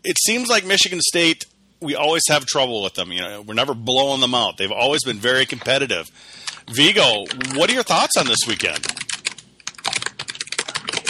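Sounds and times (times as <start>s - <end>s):
speech: 0.0s - 9.0s
typing on a computer keyboard: 6.4s - 11.0s.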